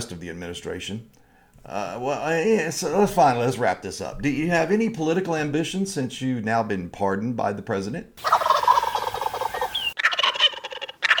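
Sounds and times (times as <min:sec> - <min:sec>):
speech: 0:00.0 - 0:08.3
turkeys gobbling in a loud rapid warbling chorus: 0:08.2 - 0:11.1.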